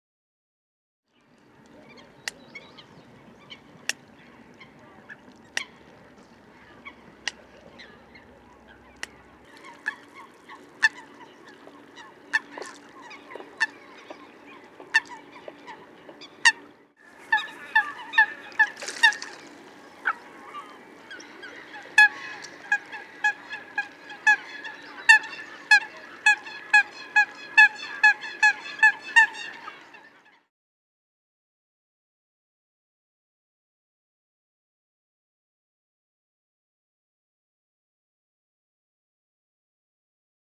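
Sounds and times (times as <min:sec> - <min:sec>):
Eurasian coot calling: 0:01.5 - 0:30.2.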